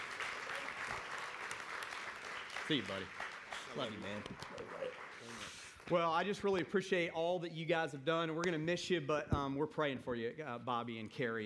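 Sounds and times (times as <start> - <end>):
crowd applauding at a church service: 0.0 - 6.6
speech: 2.7 - 11.4.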